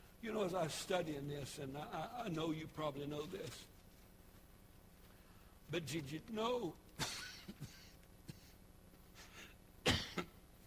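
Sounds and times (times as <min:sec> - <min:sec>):
speech: 0:00.2 - 0:03.7, 0:05.7 - 0:07.6
cough into a microphone: 0:07.0 - 0:08.6, 0:09.8 - 0:10.4.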